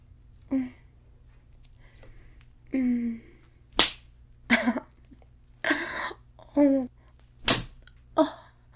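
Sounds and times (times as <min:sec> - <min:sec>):
low steady hum: 0:00.0 - 0:08.7
hand slapping a thigh: 0:03.8 - 0:04.0, 0:07.4 - 0:07.8.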